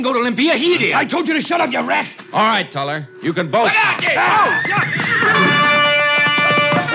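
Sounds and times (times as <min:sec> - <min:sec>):
speech: 0:00.0 - 0:05.5
frightened horse neighing and rearing: 0:04.2 - 0:06.2
agitated horse snorting: 0:04.7 - 0:06.0.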